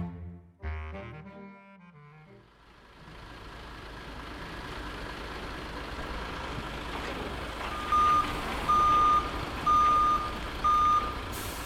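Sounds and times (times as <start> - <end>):
heavy goods vehicle low engine rumble: 2.0 - 11.6
heavy goods vehicle reversing alarm beeps: 7.7 - 11.2.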